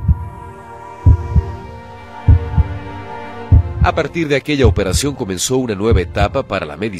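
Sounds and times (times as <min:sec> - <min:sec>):
heartbeat thumping: 0:00.0 - 0:02.9, 0:03.5 - 0:05.2, 0:05.9 - 0:06.4
speech: 0:03.9 - 0:06.9.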